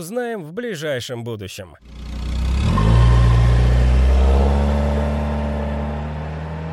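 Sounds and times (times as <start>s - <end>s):
speech: 0.0s - 2.0s
muscle car engine revving: 1.8s - 6.7s.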